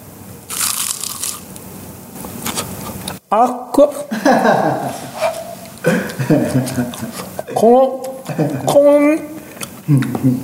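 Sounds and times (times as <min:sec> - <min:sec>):
crunching bite into salt-sprinkled food eaten bones and all: 0:00.5 - 0:01.6
speech: 0:03.3 - 0:10.4
laughter: 0:04.1 - 0:09.1.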